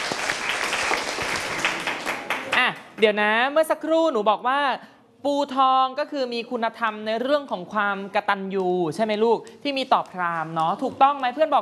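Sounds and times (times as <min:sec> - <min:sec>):
room full of people applauding in a classroom: 0:00.0 - 0:02.8
speech: 0:03.0 - 0:11.6.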